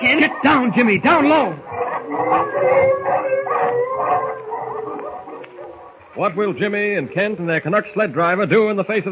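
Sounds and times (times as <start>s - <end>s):
speech: 0.0s - 3.0s, 6.2s - 9.0s
pack of hungry wolves howling in chorus: 0.0s - 6.2s.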